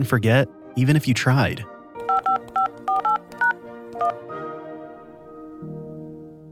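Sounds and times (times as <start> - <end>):
speech: 0.0 - 1.7
push-button telephone dialing tones: 2.0 - 4.2.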